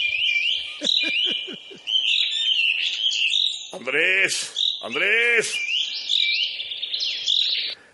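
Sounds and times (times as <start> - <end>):
dense flock of small birds chirping and tweeting while being fed: 0.0 - 7.9
laughter: 0.5 - 1.9
man shouting: 3.8 - 5.6
speech: 3.8 - 5.7.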